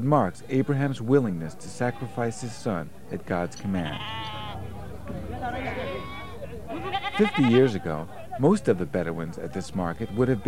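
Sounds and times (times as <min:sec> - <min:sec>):
speech: 0:00.0 - 0:04.4, 0:07.2 - 0:10.4
hubbub of crowd voices: 0:00.0 - 0:10.4
sheep bleating at a Bedouin livestock market: 0:01.7 - 0:02.6, 0:03.7 - 0:04.7, 0:05.3 - 0:07.9.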